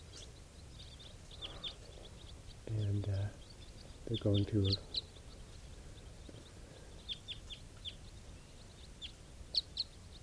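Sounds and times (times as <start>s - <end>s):
flock of wild birds flying over calling: 0.0s - 10.2s
speech: 2.7s - 3.4s, 4.1s - 5.0s.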